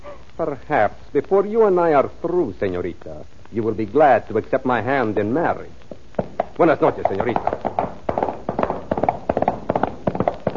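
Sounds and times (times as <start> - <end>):
speech: 0.4 - 5.9, 6.6 - 7.6
horse hooves galloping: 4.9 - 10.5.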